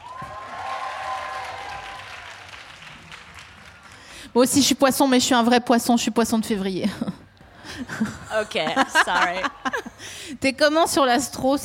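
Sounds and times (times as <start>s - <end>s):
audience applauding at a live show: 0.0s - 4.3s
speech: 4.4s - 7.2s, 7.8s - 11.6s
laughter: 6.9s - 10.0s.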